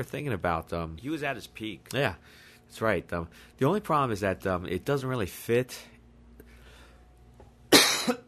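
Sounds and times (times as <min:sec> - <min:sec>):
speech: 0:00.0 - 0:05.9
person coughing: 0:07.7 - 0:08.2.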